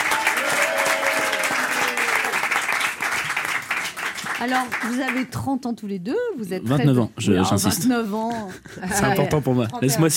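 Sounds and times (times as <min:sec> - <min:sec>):
crowd cheering: 0:00.0 - 0:05.2
audience applause: 0:00.0 - 0:05.3
speech: 0:04.4 - 0:10.1.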